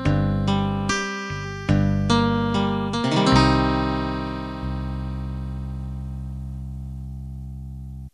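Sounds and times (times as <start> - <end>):
8-bit standard ending jingle: 0.1 - 6.2.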